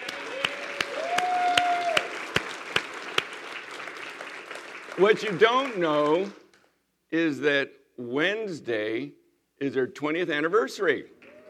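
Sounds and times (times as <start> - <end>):
audience applause at a church gathering: 0.0 - 6.4, 11.2 - 11.4
speech: 5.0 - 6.4, 7.1 - 11.2.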